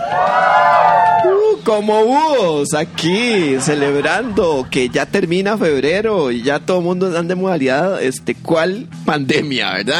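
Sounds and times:
live audience cheering and whooping at an outdoor event: 0:00.0 - 0:01.6
speech: 0:01.7 - 0:09.9
laughter: 0:02.6 - 0:06.4.

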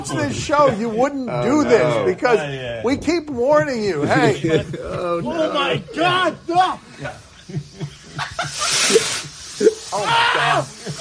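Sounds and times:
speech: 0:00.0 - 0:09.3, 0:09.9 - 0:10.7
laughter: 0:03.9 - 0:10.9
frantic voices screaming in terror: 0:09.8 - 0:10.9.

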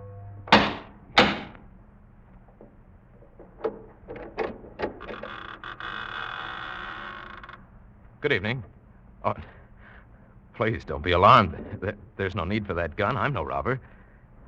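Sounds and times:
oak door creaking: 0:00.0 - 0:01.6, 0:02.5 - 0:07.8
clicks and rattles: 0:02.4 - 0:05.9
speech: 0:08.2 - 0:09.6, 0:10.6 - 0:14.0.

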